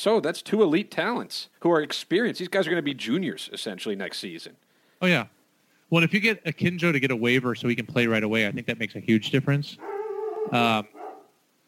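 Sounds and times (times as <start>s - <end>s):
speech: 0.0s - 11.0s
dog barking at home: 9.8s - 11.4s.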